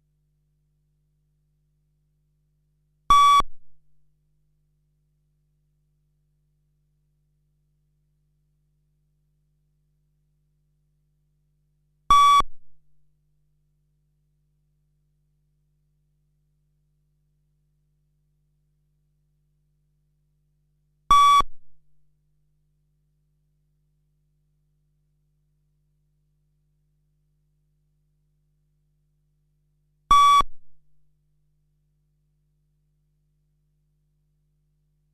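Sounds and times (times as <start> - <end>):
short mid-pitched electronic beeps pacing a running fitness test: 3.1 - 3.4, 12.1 - 12.4, 21.1 - 21.4, 30.1 - 30.4.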